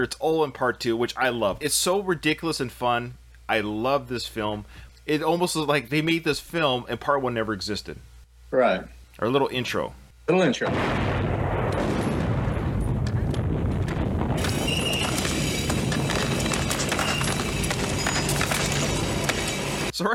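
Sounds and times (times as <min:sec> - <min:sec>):
speech: 0:00.0 - 0:11.1
loud rumbling explosion at the opening of a film: 0:10.7 - 0:19.9.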